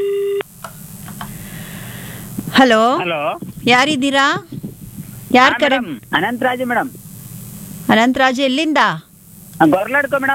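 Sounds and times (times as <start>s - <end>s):
telephone busy tone after a call disconnects: 0.0s - 0.5s
speech: 2.6s - 4.6s, 5.3s - 7.0s, 7.9s - 10.3s.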